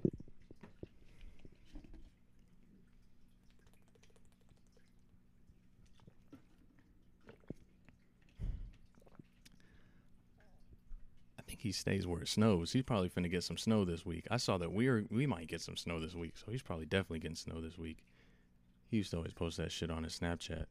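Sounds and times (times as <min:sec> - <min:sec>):
person drinking water: 0:00.0 - 0:05.1, 0:05.8 - 0:10.0
faint steady hum: 0:00.0 - 0:20.6
speech: 0:11.6 - 0:18.3, 0:18.9 - 0:20.6.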